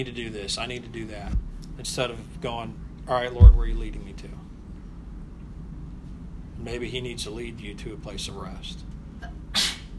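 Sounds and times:
speech: 0:00.0 - 0:04.5, 0:06.6 - 0:08.9
low steady room hum: 0:00.0 - 0:09.9
person sneezing: 0:09.2 - 0:09.9.

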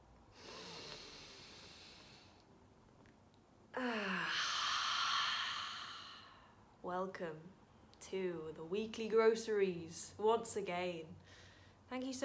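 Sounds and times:
deep slow breath in: 0:00.3 - 0:02.4, 0:04.1 - 0:06.6
speech: 0:06.9 - 0:12.2.

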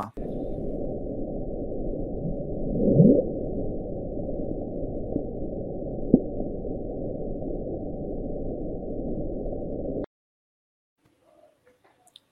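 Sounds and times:
sped-up underwater hydrophone recording of low rumble: 0:00.2 - 0:10.0.

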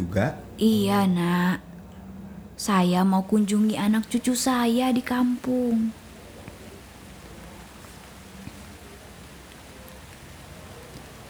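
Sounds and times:
light drizzle on the window of a moving bus in Jakarta: 0:00.0 - 0:11.2
speech: 0:00.1 - 0:01.7, 0:02.6 - 0:06.0.

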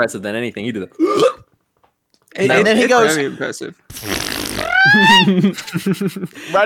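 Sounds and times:
speech: 0:00.0 - 0:01.4, 0:02.3 - 0:06.6
voice imitating a cartoon fart ending in a meep: 0:03.9 - 0:05.2
laughter: 0:04.6 - 0:06.6.

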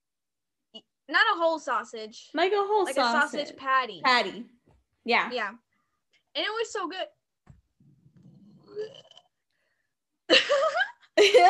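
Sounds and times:
speech: 0:00.7 - 0:05.6, 0:06.4 - 0:07.2, 0:08.8 - 0:09.1, 0:10.6 - 0:11.4
person burping after breakfast: 0:08.2 - 0:09.4.

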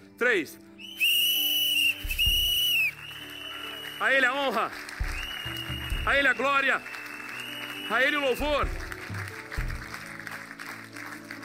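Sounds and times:
speech: 0:00.2 - 0:00.7, 0:04.0 - 0:06.9, 0:07.9 - 0:08.8
shrill whistles blown by audience members: 0:00.8 - 0:08.7.

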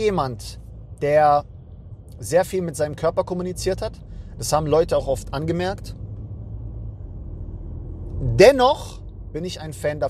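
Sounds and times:
speech: 0:00.0 - 0:01.5, 0:02.2 - 0:06.0, 0:08.2 - 0:10.0
car interior rumble while driving: 0:00.0 - 0:10.0.

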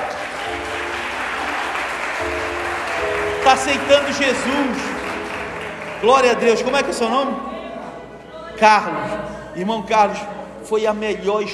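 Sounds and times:
crowd applauding: 0:00.0 - 0:07.4
speech: 0:03.5 - 0:05.0, 0:06.0 - 0:07.5, 0:08.6 - 0:11.5.

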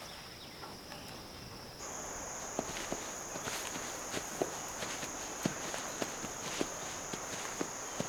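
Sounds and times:
high cricket-like insect drone: 0:00.0 - 0:08.0
horse hooves clopping on a trail: 0:01.8 - 0:08.0
man's footsteps on a trail: 0:01.8 - 0:08.0.

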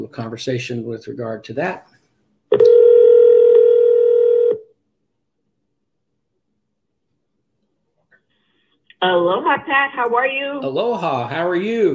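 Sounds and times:
speech: 0:00.0 - 0:02.7, 0:09.0 - 0:11.9
telephone dial tone: 0:02.6 - 0:04.6.

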